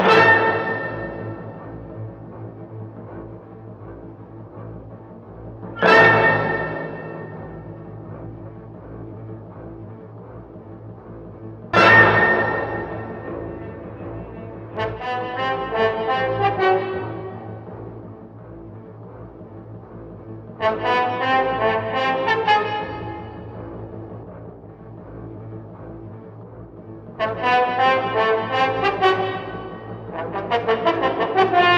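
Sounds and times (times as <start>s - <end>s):
sad horns loop: 0.0s - 2.0s, 5.8s - 8.2s, 11.7s - 17.9s, 27.2s - 31.7s
sad strings loop: 0.0s - 31.7s.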